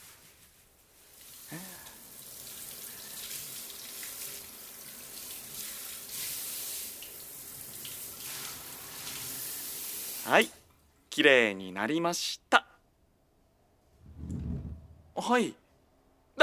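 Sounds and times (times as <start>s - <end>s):
running water rinsing soap foam off a person's chest and belly: 0.0s - 10.5s
speech: 10.3s - 10.6s, 11.2s - 12.7s, 15.2s - 15.6s.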